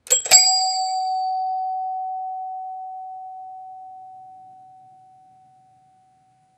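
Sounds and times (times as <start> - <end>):
traditional mechanical doorbell ringing: 0.0 - 3.8.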